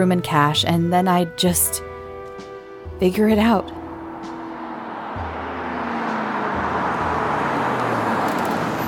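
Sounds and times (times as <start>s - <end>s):
speech: 0.0s - 1.9s, 3.0s - 3.8s
car engine humming while driving into a parking lot: 1.8s - 8.8s
tire and road noise: 2.1s - 8.8s.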